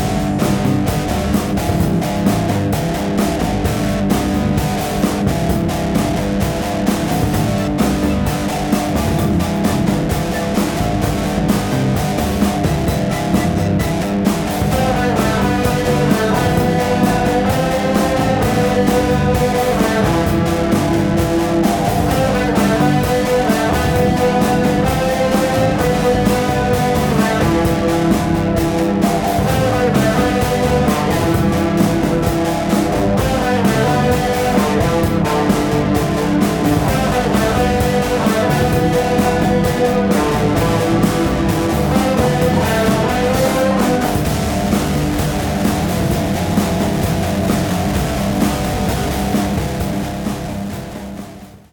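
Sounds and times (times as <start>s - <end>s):
happy guitar pop music: 0.0s - 50.3s.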